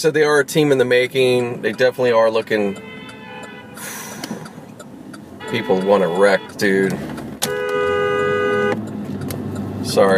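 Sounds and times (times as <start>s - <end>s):
speech: 0.0s - 2.9s, 5.5s - 7.1s, 9.9s - 10.1s
street traffic rumbling: 0.0s - 10.1s
car horn blaring: 1.6s - 4.1s, 5.4s - 8.8s.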